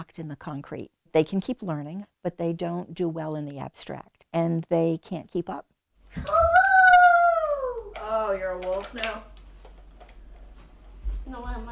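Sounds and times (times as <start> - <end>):
speech: 0.0 - 6.4, 8.2 - 9.3, 11.3 - 11.7
boy howling like a wolf in a high voice: 6.2 - 8.0.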